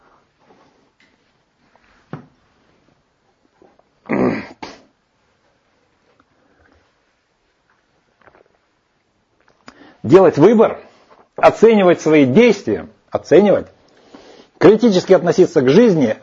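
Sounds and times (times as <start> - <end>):
lecturer clearing throat: 4.0 - 5.0
speech: 10.1 - 10.8, 11.4 - 13.7, 14.6 - 16.2.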